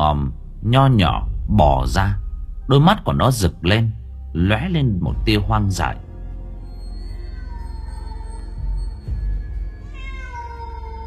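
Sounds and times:
low droning background: 0:00.0 - 0:10.0
speech: 0:00.1 - 0:06.0
hoarse cat meow: 0:07.1 - 0:09.2, 0:09.8 - 0:11.0.

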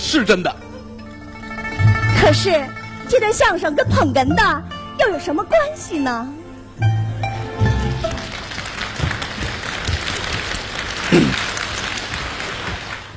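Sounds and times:
speech: 0:00.1 - 0:00.7, 0:02.2 - 0:07.0
theater audience applauding a comic crosstalk performance: 0:07.2 - 0:13.1.

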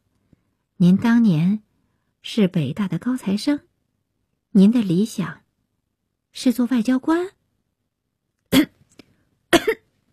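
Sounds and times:
faint small sounds: 0:00.0 - 0:10.1
speech: 0:00.8 - 0:01.6, 0:02.2 - 0:03.7, 0:04.5 - 0:05.4, 0:06.3 - 0:07.4
man choking cough: 0:09.5 - 0:09.8.

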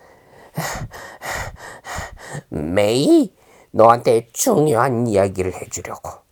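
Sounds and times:
heavy rapid panting out of breath: 0:00.0 - 0:02.6
speech: 0:02.4 - 0:06.2.

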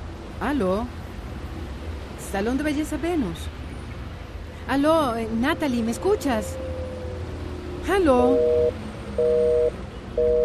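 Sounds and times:
speech: 0:00.4 - 0:01.0, 0:02.3 - 0:03.6, 0:04.7 - 0:06.7, 0:07.8 - 0:10.4
telephone busy signal on a call line: 0:08.2 - 0:10.4.

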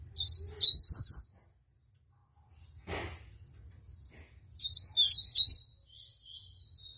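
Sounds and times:
female Rusty-collared seedeater singing: 0:00.2 - 0:01.5, 0:04.6 - 0:06.9.

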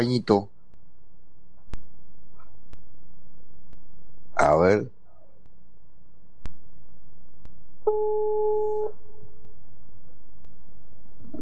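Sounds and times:
speech: 0:00.0 - 0:00.6, 0:04.4 - 0:05.0, 0:07.9 - 0:09.0
quiet hum: 0:00.0 - 0:11.3
telephone ringback tone, call unanswered: 0:07.9 - 0:08.9.

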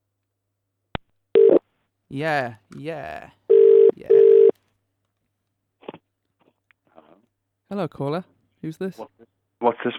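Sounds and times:
steady single-pitched electronic telephone line tone: 0:01.4 - 0:01.6, 0:03.5 - 0:04.5
speech: 0:02.1 - 0:03.4, 0:07.7 - 0:09.9.

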